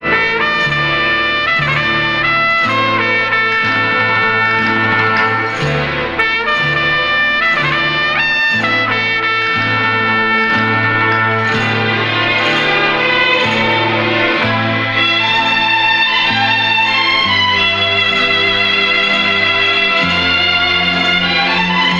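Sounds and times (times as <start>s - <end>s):
horns in sad loops: 0.0s - 21.9s
strings in sad loops: 0.0s - 21.9s.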